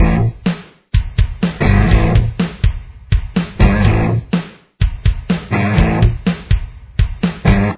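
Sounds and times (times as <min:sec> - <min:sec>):
bass guitar: 0:00.0 - 0:00.4, 0:01.4 - 0:02.4, 0:03.4 - 0:06.4, 0:07.0 - 0:07.7
guitar: 0:00.0 - 0:00.4, 0:01.6 - 0:02.4, 0:03.6 - 0:04.3, 0:05.4 - 0:06.2, 0:07.4 - 0:07.7.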